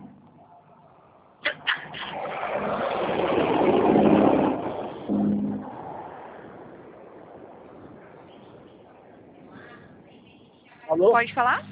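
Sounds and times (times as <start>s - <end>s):
droning tone: 0.0s - 11.7s
truck engine revving as it pulls away: 1.7s - 6.6s
speech: 11.0s - 11.7s.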